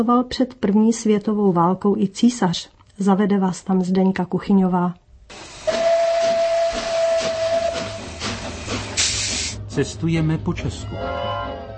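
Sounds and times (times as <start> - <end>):
speech: 0.0 - 5.5, 9.8 - 11.3
rumble and hiss of a moving passenger train: 5.3 - 10.5
passenger train horn hooting: 5.6 - 8.2, 10.8 - 11.7.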